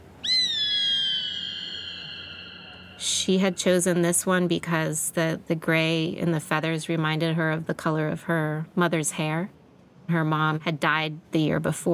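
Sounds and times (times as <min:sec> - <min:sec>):
gray hawk plaintive whistle: 0:00.2 - 0:03.1
speech: 0:03.0 - 0:11.9.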